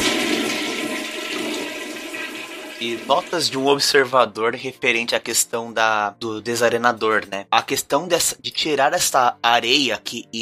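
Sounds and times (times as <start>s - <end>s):
toilet flushing after a lever is pressed: 0.0s - 3.9s
speech: 2.8s - 10.4s.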